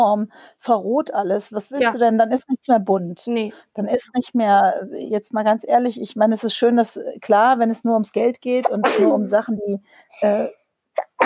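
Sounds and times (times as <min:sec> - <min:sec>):
speech: 0:00.0 - 0:11.2
single loud sneeze: 0:08.6 - 0:09.2, 0:11.0 - 0:11.2.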